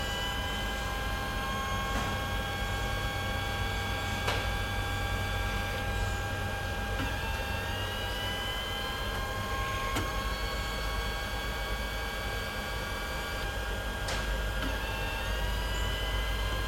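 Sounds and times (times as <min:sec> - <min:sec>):
MPCNC machine idling: 0:00.0 - 0:16.6.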